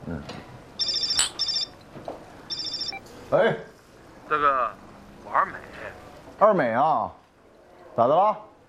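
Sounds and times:
mobile phone ringtone chiming in bright high-pitched bursts: 0.8 - 1.8, 2.5 - 3.0
speech: 3.3 - 3.7, 4.3 - 7.2, 8.0 - 8.5.

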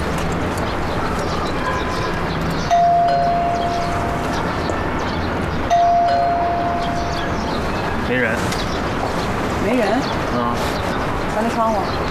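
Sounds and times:
outdoor noise: 0.0 - 12.1
doorbell chiming: 2.7 - 4.3, 5.7 - 7.3
speech: 11.4 - 12.1.

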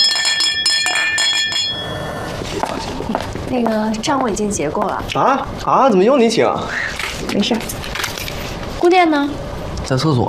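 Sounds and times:
drinking glasses clinking in a holiday toast: 0.0 - 2.7
speech: 3.5 - 7.8, 8.8 - 10.2.

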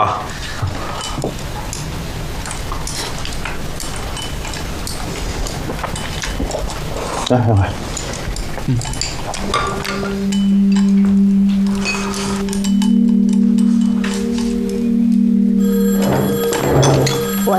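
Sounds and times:
busy noise: 0.0 - 17.5
speech: 7.3 - 7.9, 8.7 - 11.4
telephone ringing: 12.5 - 17.5.

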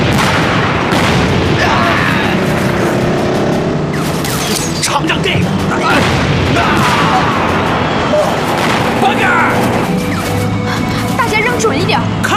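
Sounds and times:
hand grenades thrown and exploding in a chaotic fight: 0.0 - 10.0
voices shouting: 4.7 - 12.3.

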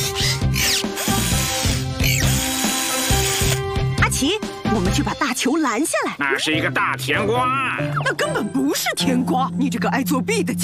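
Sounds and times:
power screwdriver whirring while fixing tables: 0.0 - 3.7
speech: 4.3 - 10.6.

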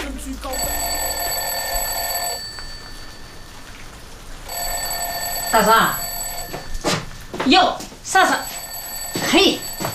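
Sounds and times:
alarm clock ringing with a shrill buzzing metallic tone: 0.5 - 3.6, 4.5 - 7.1, 8.4 - 9.9
speech: 5.5 - 6.0, 7.4 - 8.5, 9.3 - 9.9.

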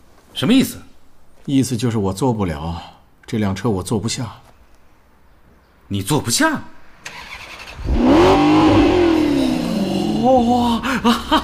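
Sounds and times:
speech: 0.4 - 0.9, 1.5 - 4.5, 5.9 - 7.2, 10.2 - 11.4
car engine revving: 7.1 - 10.9
laughter: 10.0 - 11.4.

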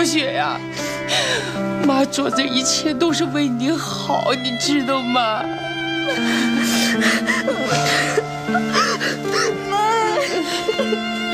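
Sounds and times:
speech: 0.0 - 11.3
person sobbing while being comforted: 6.1 - 11.3.

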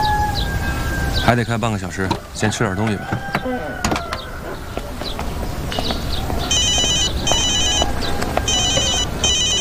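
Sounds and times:
birds chirping: 0.0 - 9.5
speech: 1.3 - 3.8
mobile phone ringtone ringing: 6.5 - 9.5.

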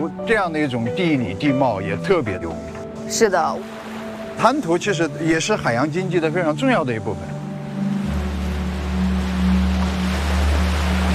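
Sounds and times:
speech: 0.0 - 3.8, 4.4 - 7.3
sea water washing in a bay of the inner sea at Xiapu, China: 3.0 - 11.1.

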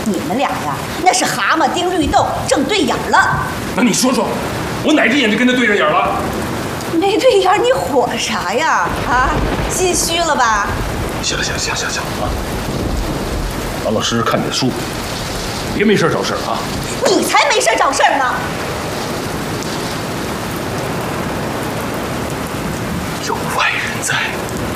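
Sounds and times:
heavy rain pouring outside: 0.0 - 24.7
thunder rumbles: 0.0 - 24.7
people arguing indoors: 0.1 - 12.8, 13.8 - 19.0.

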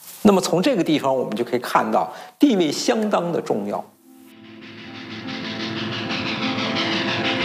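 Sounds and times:
speech: 0.2 - 4.0
train rolling along rails with continuous rumble: 4.4 - 7.4.

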